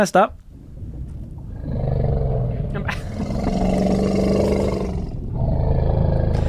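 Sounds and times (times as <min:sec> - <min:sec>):
speech: 0:00.0 - 0:00.4
elephant roaring: 0:01.5 - 0:06.4.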